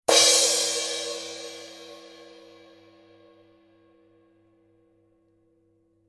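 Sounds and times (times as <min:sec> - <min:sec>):
Paiste Color Sound 900 Red heavy crash cymbal: 0:00.1 - 0:03.4.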